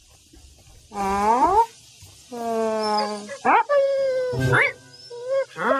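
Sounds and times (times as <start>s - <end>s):
speech: 0.9s - 1.3s
puppy whining and howling: 2.7s - 5.7s.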